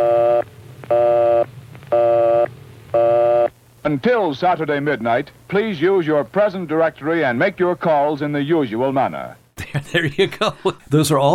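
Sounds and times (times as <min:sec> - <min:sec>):
telephone busy signal: 0:00.0 - 0:03.5
faint telephone line hum: 0:00.0 - 0:08.1
speech: 0:03.8 - 0:11.3
laughter: 0:09.6 - 0:11.0.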